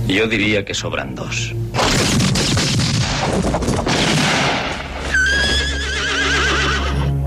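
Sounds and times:
speech: 0:00.1 - 0:02.2
busy noisy clatter: 0:01.8 - 0:05.2
horse whinnying: 0:05.0 - 0:07.2.

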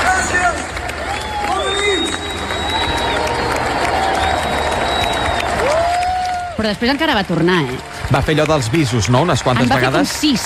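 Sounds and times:
large concert audience clapping and shouting in an ovation: 0:00.0 - 0:10.4
piercing whistles from a concert audience: 0:01.4 - 0:03.4, 0:04.1 - 0:05.5
speech: 0:06.6 - 0:10.4.

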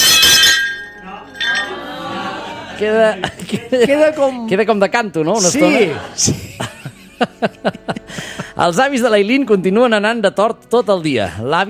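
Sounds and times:
ceramic plate breaking: 0:00.0 - 0:01.8
laughter: 0:01.4 - 0:04.5, 0:05.4 - 0:08.6
speech: 0:02.8 - 0:06.4, 0:07.2 - 0:11.6.

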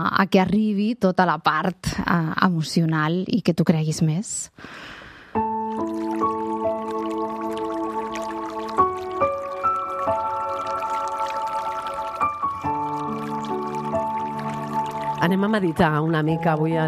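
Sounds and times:
speech: 0:00.0 - 0:06.3, 0:15.3 - 0:16.8
soft sustained music chords: 0:05.4 - 0:16.8
flowing river water: 0:05.7 - 0:16.8.

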